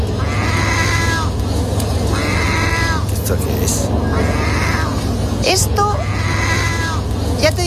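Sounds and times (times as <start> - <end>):
low rumble: 0.0 - 7.6
seagull whining calls like a cat's meow: 0.1 - 1.4, 2.1 - 3.1, 4.0 - 7.1
speech: 5.5 - 6.0.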